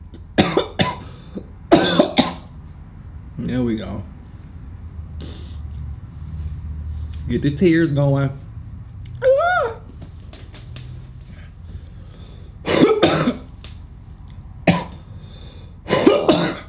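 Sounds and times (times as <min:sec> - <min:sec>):
harsh coughing: 0:00.4 - 0:02.5, 0:12.6 - 0:13.5, 0:14.7 - 0:16.6
speech: 0:03.4 - 0:04.1, 0:07.3 - 0:08.4
high-pitched vocal sound: 0:09.2 - 0:09.9.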